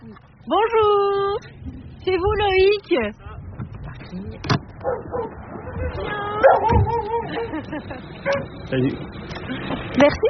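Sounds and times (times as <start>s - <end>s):
speech: 0.1s - 3.3s, 4.1s - 10.2s
dog barking and yipping with whining tones: 4.8s - 7.3s, 8.2s - 8.5s
laughter: 6.9s - 8.3s.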